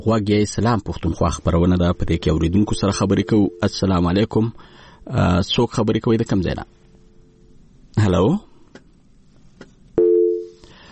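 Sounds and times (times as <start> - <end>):
speech: 0.0 - 6.8, 8.0 - 8.5
telephone busy tone from a cut-off phone line: 2.1 - 3.8, 10.0 - 10.6.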